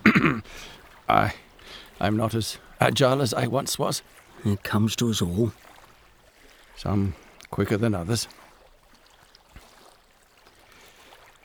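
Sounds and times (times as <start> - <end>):
narrow boat low engine rumble: 0.0 - 5.9
narrow boat wash on the water: 0.0 - 8.6
speech: 0.4 - 1.4, 2.0 - 5.7, 6.8 - 8.4.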